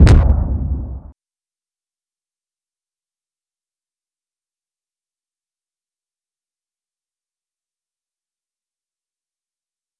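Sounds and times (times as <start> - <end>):
explosion boom: 0.0 - 1.1.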